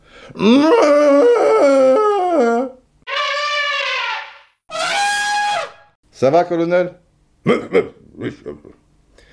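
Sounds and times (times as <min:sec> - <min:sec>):
speech: 0:00.3 - 0:00.9, 0:06.2 - 0:08.8
man's voice imitating an elephant trumpeting: 0:00.4 - 0:05.8.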